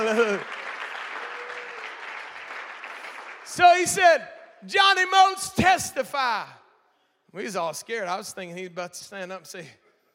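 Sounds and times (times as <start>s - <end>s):
audience applause: 0.0s - 4.0s
speech: 3.6s - 6.6s, 7.3s - 9.8s.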